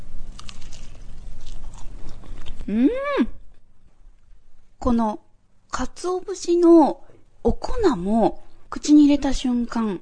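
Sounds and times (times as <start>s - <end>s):
crunchy biting and chewing of a grilled rice ball with whitebait and soy sauce: 0.0s - 2.7s
speech: 2.7s - 3.4s, 4.8s - 5.2s, 5.8s - 10.0s.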